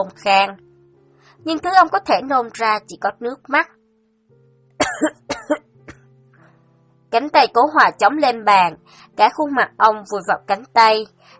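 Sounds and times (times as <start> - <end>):
speech: 0.0 - 0.6, 1.4 - 3.8, 5.0 - 5.7, 7.1 - 11.3
man coughing hard from the chest: 4.8 - 6.0.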